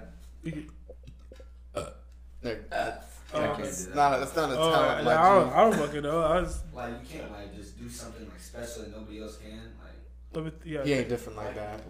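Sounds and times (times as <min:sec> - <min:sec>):
speech: 0:00.4 - 0:01.1, 0:01.8 - 0:02.8, 0:03.6 - 0:11.8
loud deliberate throaty burp: 0:01.7 - 0:02.0.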